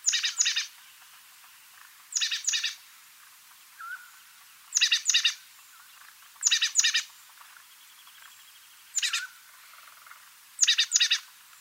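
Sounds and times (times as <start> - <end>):
oak titmouse calls in the Sierra Nevada of California: 0.0 - 0.8, 2.1 - 2.8, 3.8 - 7.2, 8.9 - 11.3.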